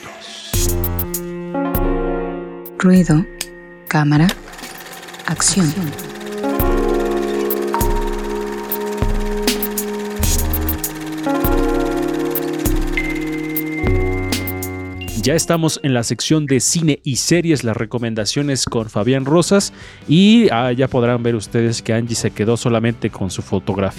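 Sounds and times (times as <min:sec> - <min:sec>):
punchy musical jingle with bright rhythmic chords: 0:00.6 - 0:16.0
speech: 0:02.8 - 0:04.4, 0:05.3 - 0:06.1, 0:15.2 - 0:23.9.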